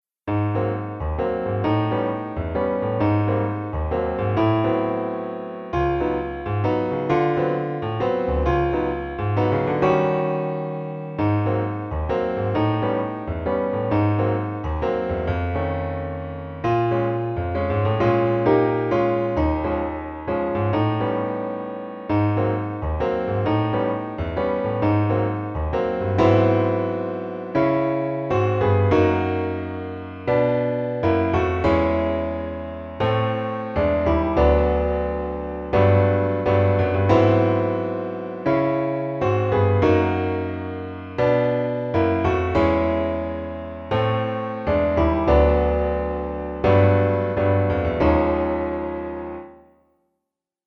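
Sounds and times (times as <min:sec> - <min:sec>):
solo piano blues waltz: 0:00.0 - 0:50.0.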